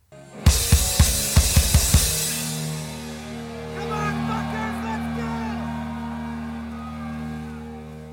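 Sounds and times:
hard drum hits: 0.5 - 3.3
man yelling to a crowd: 3.7 - 5.8.

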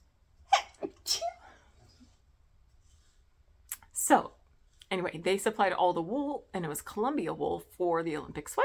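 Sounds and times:
sneeze set off by handling wool: 0.5 - 1.5
speech: 4.1 - 4.3, 4.9 - 8.6.

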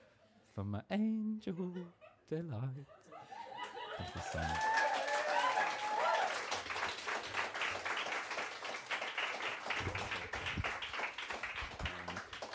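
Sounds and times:
speech: 0.6 - 3.3, 4.0 - 4.8
laughter: 1.5 - 4.9
audience applause: 3.6 - 12.5.

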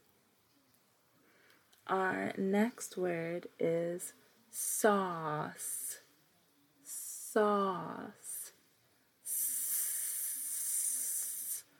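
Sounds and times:
speech: 1.9 - 5.8, 7.4 - 8.2
person imitating a snake's hiss: 9.3 - 11.7.

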